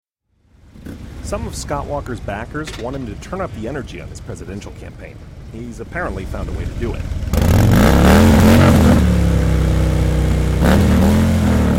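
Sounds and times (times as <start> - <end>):
speech: 1.3 - 7.4
motorcycle engine revving and idling: 5.9 - 11.7.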